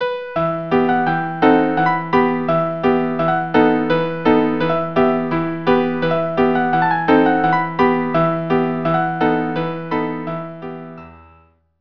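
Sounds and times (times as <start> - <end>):
piano playing: 0.0 - 11.5.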